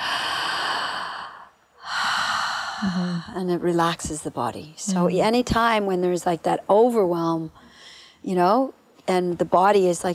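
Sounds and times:
deep breath taken to relax: 0:00.0 - 0:03.4
speech: 0:02.8 - 0:07.6, 0:08.2 - 0:10.1.

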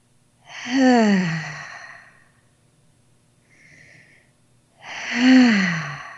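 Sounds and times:
deep breaths in and out: 0:00.4 - 0:02.5, 0:03.4 - 0:06.1.

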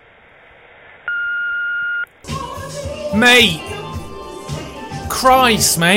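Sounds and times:
electronic answering machine beep: 0:01.1 - 0:02.1
speech: 0:03.1 - 0:03.8, 0:05.1 - 0:05.9.

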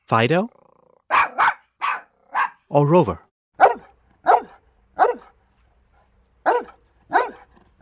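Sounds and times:
speech: 0:00.1 - 0:00.6, 0:02.7 - 0:03.3
two dogs barking at different pitches: 0:01.1 - 0:02.7, 0:03.6 - 0:05.4, 0:06.4 - 0:07.8.

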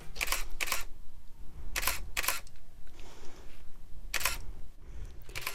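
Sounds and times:
camera shutter clicking: 0:00.1 - 0:00.9, 0:01.7 - 0:02.5, 0:04.1 - 0:04.5, 0:05.3 - 0:05.5.

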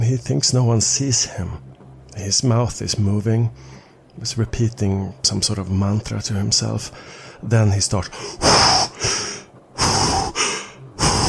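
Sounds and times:
speech: 0:00.1 - 0:08.9
man box breathing with heavy rasping breaths: 0:03.6 - 0:04.0, 0:07.0 - 0:07.4, 0:08.1 - 0:11.2.

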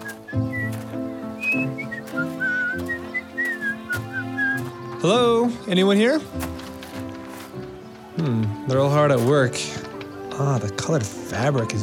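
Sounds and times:
person whistling a cheerful bouncy tune while walking towards a weaver's shop: 0:00.0 - 0:00.8, 0:01.4 - 0:04.6
soft steady musical backing: 0:00.0 - 0:11.8
speech: 0:05.0 - 0:06.5, 0:08.2 - 0:09.8, 0:10.4 - 0:11.8.

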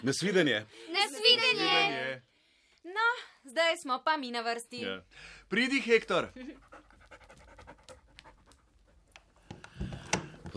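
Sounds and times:
speech: 0:00.0 - 0:06.8
labrador dog panting: 0:06.5 - 0:09.4.

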